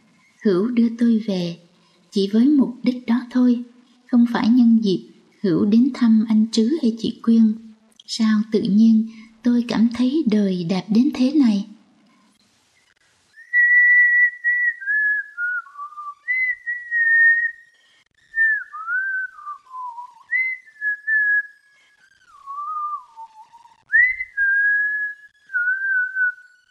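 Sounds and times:
speech: 0.4s - 11.7s
young woman whistling a tune: 13.4s - 17.6s, 18.4s - 21.6s, 22.2s - 26.5s.

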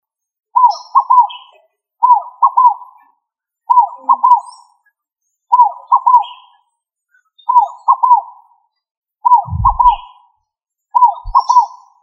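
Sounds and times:
faint higher chirps from other birds: 0.0s - 12.0s
pigeon giving low cooing calls: 9.3s - 10.1s
brief low thumps: 9.4s - 10.1s.

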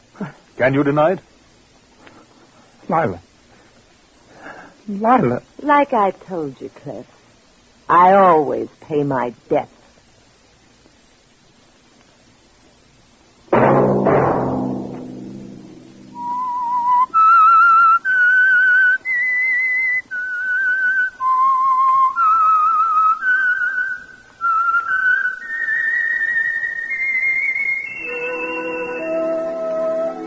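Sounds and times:
speech: 0.2s - 1.3s, 2.9s - 3.3s, 4.9s - 7.2s, 7.9s - 9.8s
low resonant sound: 13.5s - 16.8s
person whistling a tune: 16.2s - 30.2s.

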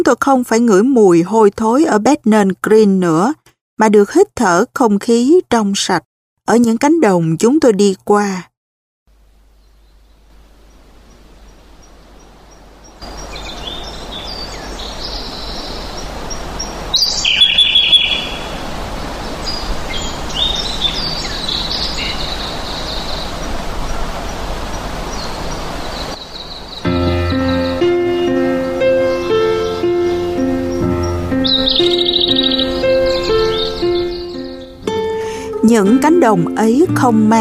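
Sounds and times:
speech: 0.0s - 8.5s, 35.8s - 37.3s
steady hissy background: 9.1s - 37.3s
birds singing in open fields: 9.5s - 35.2s.

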